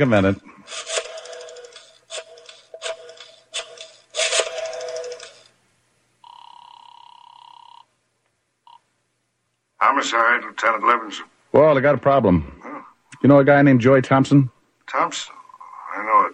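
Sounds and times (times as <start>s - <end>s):
speech: 0.0s - 0.9s, 10.1s - 15.4s
rotary phone being dialed: 0.7s - 5.6s, 6.2s - 7.9s.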